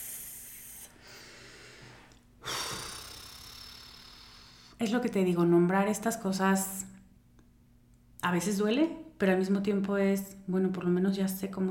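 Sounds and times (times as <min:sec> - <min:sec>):
person taking a deep breath during a guided breathing pause: 0:00.0 - 0:04.8
speech: 0:04.8 - 0:06.9, 0:08.2 - 0:11.7.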